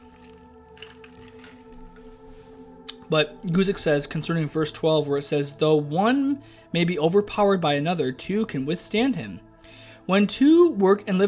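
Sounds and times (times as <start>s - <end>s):
wet sipping and slurping of water: 0.0s - 1.7s
speech: 3.1s - 9.5s, 10.1s - 11.2s.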